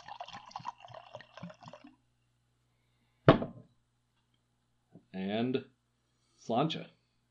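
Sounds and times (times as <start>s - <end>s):
scotch being poured into a glass: 0.0s - 2.0s
solid knock like a bottle set down: 3.3s - 3.6s
speech: 5.2s - 5.7s, 6.4s - 7.0s.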